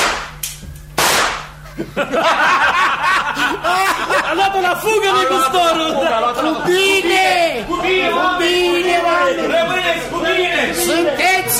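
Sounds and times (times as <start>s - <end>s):
rifle gunshot crack: 0.0s - 0.4s, 1.0s - 1.5s
small snap: 0.0s - 1.5s
voices chuckling: 1.6s - 8.6s
speech: 1.8s - 2.5s, 4.7s - 11.5s.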